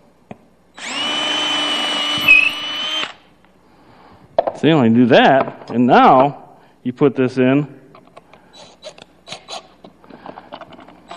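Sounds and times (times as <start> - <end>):
power drill pre-drilling a hole: 0.8 - 3.2
speech: 4.6 - 7.8.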